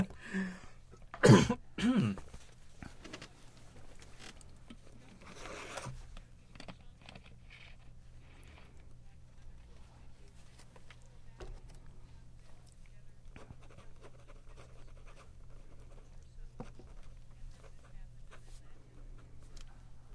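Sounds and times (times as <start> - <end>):
person coughing: 1.1 - 2.3
rustling, scraping and small handling noises: 2.2 - 20.1.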